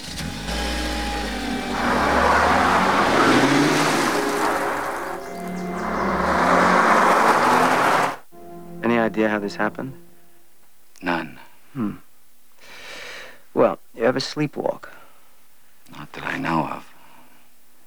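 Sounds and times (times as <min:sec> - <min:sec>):
car speeding away over a gravel driveway: 0:00.0 - 0:08.3
speech: 0:09.2 - 0:10.1, 0:11.0 - 0:12.0, 0:13.6 - 0:14.9, 0:16.4 - 0:16.9.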